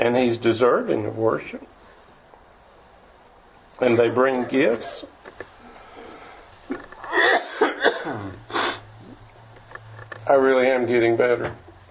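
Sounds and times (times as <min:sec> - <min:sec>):
speech: 0:00.0 - 0:01.8, 0:03.8 - 0:05.5, 0:08.0 - 0:08.5, 0:10.3 - 0:11.6
person coughing harshly: 0:07.1 - 0:08.4.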